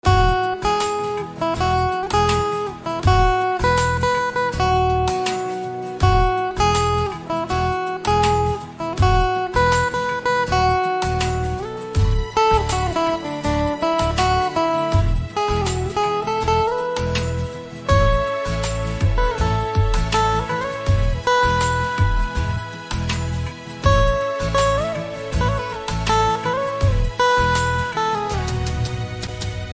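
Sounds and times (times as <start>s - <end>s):
guitar instrumental ringtone: 0.0s - 29.4s.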